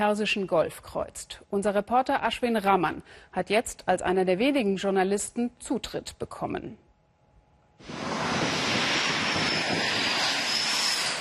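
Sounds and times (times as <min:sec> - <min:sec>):
speech: 0:00.0 - 0:06.8, 0:07.8 - 0:08.1
fighter jet engines roaring on an aircraft carrier in the Persian Gulf: 0:07.8 - 0:11.2.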